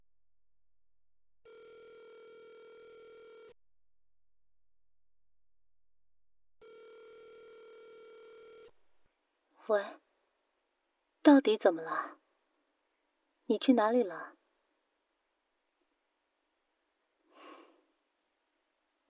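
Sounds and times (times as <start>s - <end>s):
phone ringback buzzing tone: 1.5s - 3.6s, 6.6s - 8.7s
speech: 9.7s - 10.0s, 11.3s - 12.2s, 13.5s - 14.4s.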